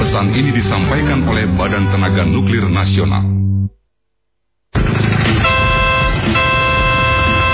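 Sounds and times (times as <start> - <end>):
speech: 0.2 - 3.3
car engine rumbling: 4.7 - 7.5
car horn honking: 5.4 - 7.5.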